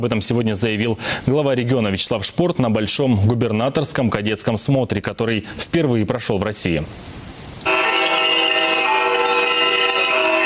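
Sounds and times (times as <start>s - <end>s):
speech: 0.0s - 7.3s
church bells ringing in a dense peal: 7.7s - 10.4s.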